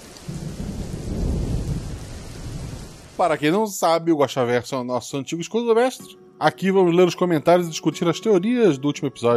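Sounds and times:
steady rain: 0.0 - 4.0
low rumbling thunder: 0.3 - 3.2
speech: 3.2 - 9.3.

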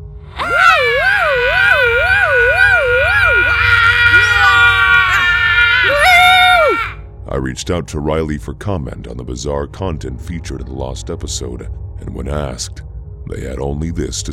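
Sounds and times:
three people screaming together: 0.3 - 7.0
speech: 7.4 - 14.3.

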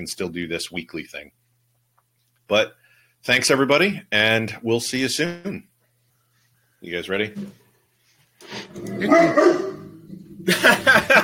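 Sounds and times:
speech: 0.0 - 1.4, 2.5 - 5.7, 6.8 - 7.6, 8.4 - 9.7, 10.4 - 11.2
dog whiny yelping: 8.7 - 10.2
dogs barking: 8.8 - 10.0
laughter: 10.4 - 11.2.

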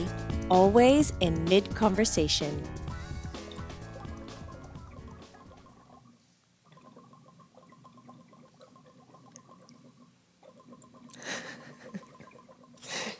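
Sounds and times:
speech: 0.5 - 2.8
water gurgling and bubbling in a water bong: 2.8 - 13.1.

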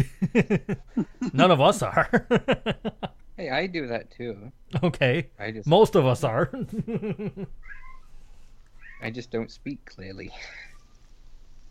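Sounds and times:
laughter: 0.0 - 1.4, 2.0 - 3.2, 6.5 - 7.6
speech: 0.0 - 7.8, 9.0 - 10.7
hiss: 0.0 - 11.6
cat meowing: 7.6 - 9.1.

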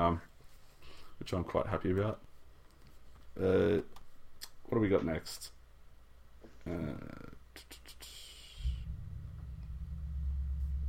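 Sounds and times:
speech: 0.0 - 0.3, 1.2 - 2.3, 3.4 - 4.0, 4.7 - 5.6, 6.6 - 7.8
neighbor's car engine starting: 8.8 - 10.8.

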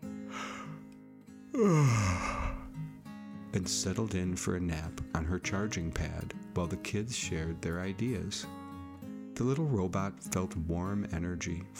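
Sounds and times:
soft steady music: 0.0 - 11.7
voiced yawn imitated by a narrator: 1.5 - 2.7
speech: 1.6 - 2.4, 3.6 - 8.6, 9.4 - 11.7.

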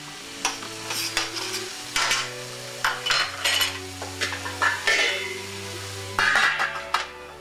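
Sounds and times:
onions sauteing in a pan: 0.0 - 7.4
utensil scraping a pan while stirring onions: 0.5 - 5.4, 6.1 - 7.1.

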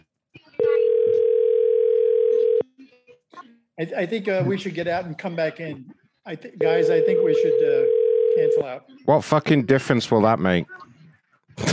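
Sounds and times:
telephone tone while a call is being placed: 0.6 - 2.6, 6.6 - 8.6
speech: 3.8 - 10.9.

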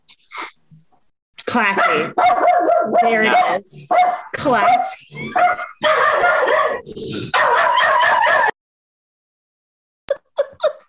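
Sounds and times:
speech: 1.5 - 7.7
several dogs barking and yapping: 1.8 - 8.6.

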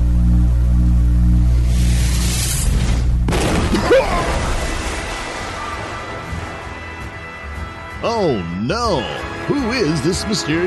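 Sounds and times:
low steady humming drone: 0.0 - 7.7
energy blast explosion: 1.7 - 6.6
crackling rumbling debris: 2.6 - 7.1
speech: 8.2 - 10.6.

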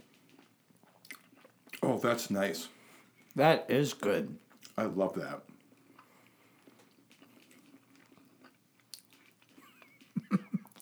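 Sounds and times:
crunchy chewing with wet bites: 0.1 - 1.9, 5.4 - 10.8
speech: 1.9 - 2.8, 3.4 - 5.5.

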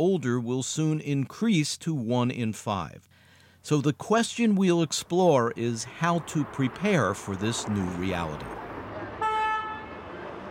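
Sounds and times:
speech: 0.0 - 8.7
city street traffic rumbling: 3.6 - 10.5
short bright car horn honk: 9.0 - 10.3.

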